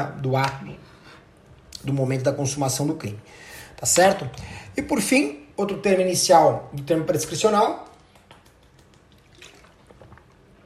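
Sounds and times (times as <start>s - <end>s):
speech: 0.0s - 0.9s, 1.8s - 7.9s
person sipping and gulping water: 8.0s - 10.6s.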